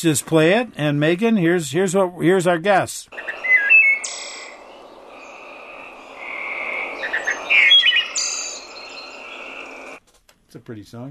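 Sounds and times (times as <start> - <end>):
speech: 0.0 - 3.5, 10.5 - 11.0
tree frogs chorus trilling: 3.1 - 10.0
wood thrush singing fluted whistled phrases: 3.1 - 10.0.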